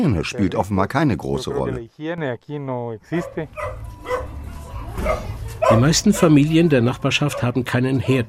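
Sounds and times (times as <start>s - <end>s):
speech: 0.0s - 4.0s, 5.0s - 8.2s
dog barking in a poor neighbourhood of Guatemala's capital: 3.2s - 4.4s, 5.0s - 6.4s, 7.2s - 8.2s.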